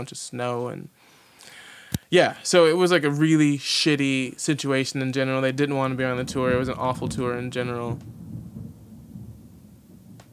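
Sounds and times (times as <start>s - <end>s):
speech: 0.0s - 8.2s
thunder rumbling outside heard from indoors: 5.8s - 10.3s.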